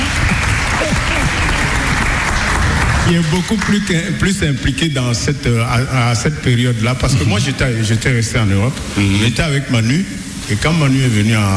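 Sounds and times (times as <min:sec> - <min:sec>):
audience applause at a live event: 0:00.0 - 0:04.6
speech: 0:03.1 - 0:11.5.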